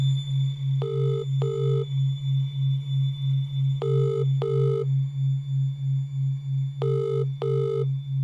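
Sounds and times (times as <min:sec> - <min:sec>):
low pulsing hum: 0:00.0 - 0:08.2
mobile phone call ringing: 0:00.8 - 0:01.8, 0:03.8 - 0:04.8, 0:06.8 - 0:07.8.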